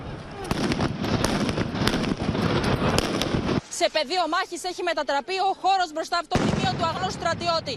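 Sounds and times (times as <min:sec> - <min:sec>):
stun grenade explosions during street riot: 0:00.5 - 0:03.6
speech: 0:03.8 - 0:07.7.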